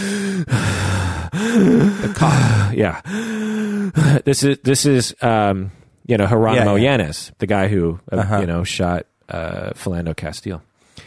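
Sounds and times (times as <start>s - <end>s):
voice imitating heavy gasping breathing of a police officer: 0.0s - 4.2s
speech: 1.6s - 11.0s.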